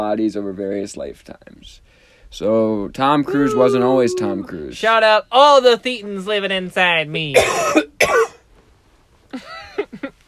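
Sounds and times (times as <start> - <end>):
speech: 0.1 - 7.8
person coughing: 3.3 - 4.4, 7.4 - 8.4.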